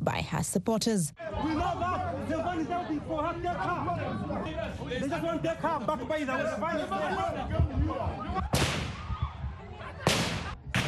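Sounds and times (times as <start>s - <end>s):
speech: 0.4s - 8.8s
agitated crowd chatter and shouting outside a court: 1.1s - 10.8s
gunshots fired into the air to disperse a crowd: 8.5s - 9.1s, 10.0s - 10.8s.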